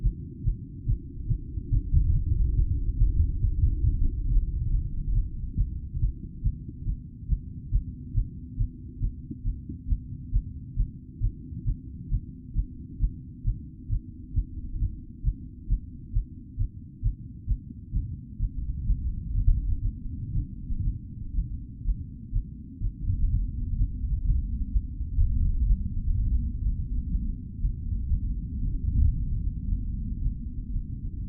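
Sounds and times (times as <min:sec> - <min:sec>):
fast heartbeat after a climb: 0:00.0 - 0:31.2.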